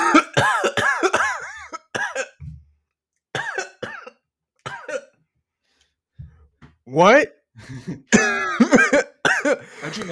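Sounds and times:
person coughing hard: 0:00.0 - 0:02.4, 0:03.4 - 0:05.1, 0:08.1 - 0:10.1
speech: 0:07.0 - 0:09.1, 0:09.8 - 0:10.1.

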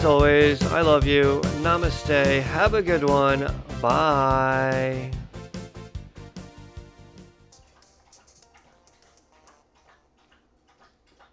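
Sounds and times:
speech: 0:00.0 - 0:05.2
dog lapping water from a bowl: 0:07.5 - 0:11.3.

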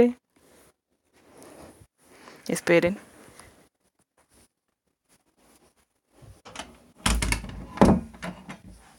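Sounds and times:
speech: 0:00.0 - 0:00.2, 0:02.5 - 0:03.1
door pushed shut thumping and rattling, not latching: 0:06.4 - 0:08.8.

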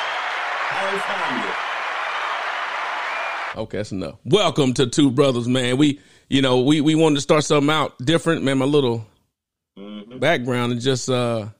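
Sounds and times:
played applause sound effect: 0:00.0 - 0:03.6
speech: 0:00.7 - 0:01.7, 0:03.5 - 0:09.1, 0:09.8 - 0:11.5.

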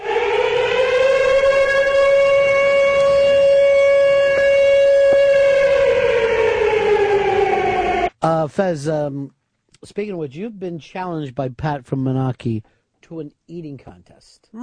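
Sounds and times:
wailing civil-defense siren: 0:00.0 - 0:08.1
speech: 0:08.4 - 0:14.6.

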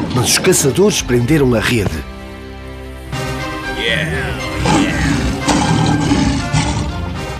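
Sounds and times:
lion roaring: 0:00.0 - 0:00.8, 0:03.8 - 0:07.3
speech: 0:00.2 - 0:02.1.

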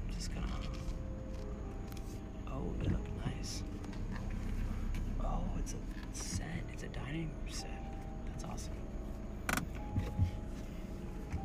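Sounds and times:
car approaching on a street with low engine rumble: 0:00.0 - 0:11.4
speech: 0:05.6 - 0:08.9, 0:10.0 - 0:10.6.

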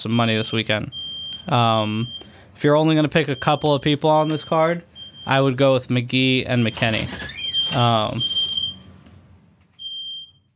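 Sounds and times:
speech: 0:00.0 - 0:08.4
shrill high-pitched smoke alarm beeping: 0:00.5 - 0:05.6, 0:06.6 - 0:08.9, 0:09.8 - 0:10.5.

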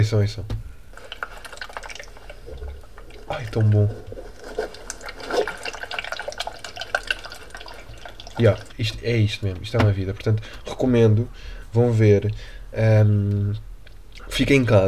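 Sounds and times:
speech: 0:00.0 - 0:00.6, 0:03.3 - 0:04.2, 0:08.4 - 0:13.7, 0:14.4 - 0:14.8
water being shaken, sloshing and dripping: 0:00.9 - 0:10.7
gurgling water splash: 0:01.0 - 0:08.8.

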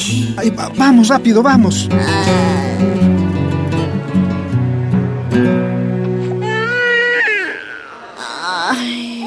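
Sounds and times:
speech: 0:00.0 - 0:02.8
sustained instrumental chords: 0:00.0 - 0:06.8
newborn baby girl crying in a hospital: 0:01.9 - 0:03.1, 0:06.2 - 0:09.2.

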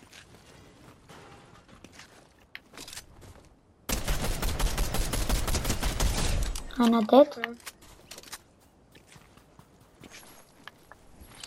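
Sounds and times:
gunfire in a video game match: 0:03.9 - 0:06.7
speech: 0:06.8 - 0:07.7.

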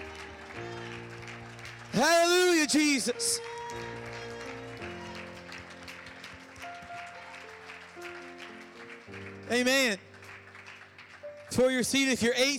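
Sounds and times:
audience clapping: 0:00.0 - 0:12.5
sustained church music: 0:00.0 - 0:12.5
man's loud drawn-out exclamation: 0:02.0 - 0:03.5
speech: 0:02.0 - 0:03.9, 0:09.5 - 0:10.1, 0:11.6 - 0:12.5.

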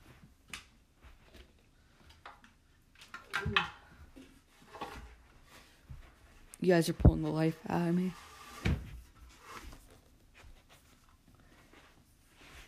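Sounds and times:
chair dragged across the floor with a short scraping squeal: 0:04.6 - 0:05.9, 0:07.4 - 0:10.1
speech: 0:06.6 - 0:08.2.

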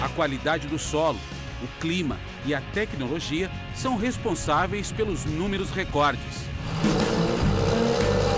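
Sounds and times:
speech: 0:00.2 - 0:06.9
modern tractor engine running while driven from the cab: 0:04.0 - 0:08.3.

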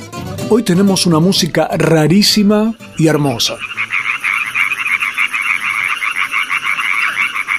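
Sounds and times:
speech: 0:00.5 - 0:03.7
chorus of frogs and toads croaking in a wetland: 0:02.6 - 0:07.5
thin steady cricket trill: 0:02.7 - 0:07.5.

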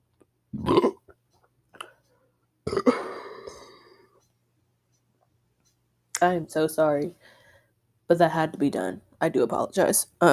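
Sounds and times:
burping after drinking Sierra Mist soda: 0:00.5 - 0:01.1, 0:02.7 - 0:04.0
speech: 0:06.2 - 0:07.4, 0:08.1 - 0:10.3.

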